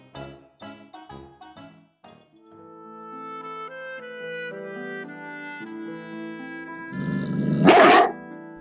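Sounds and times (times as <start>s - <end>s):
melodic music with plucked notes: 0.0s - 8.5s
big dog growling: 7.0s - 8.1s.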